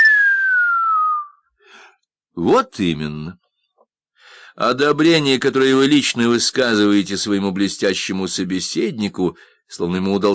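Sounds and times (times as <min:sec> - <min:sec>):
person giving an impressed downward-sliding whistle: 0:00.0 - 0:01.5
speech: 0:02.4 - 0:03.4, 0:04.6 - 0:10.3.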